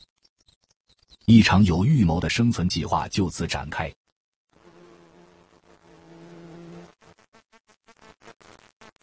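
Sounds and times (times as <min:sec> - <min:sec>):
speech: 0:01.3 - 0:04.0
bumblebee buzzing as it flies to its nest carrying larvae: 0:04.5 - 0:09.0.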